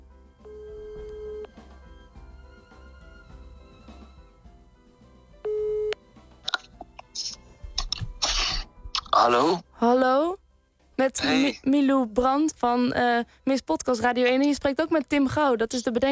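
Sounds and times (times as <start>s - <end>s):
telephone ringing tone: 0.4s - 1.5s, 5.5s - 6.0s
speech: 9.2s - 10.4s, 11.0s - 16.0s.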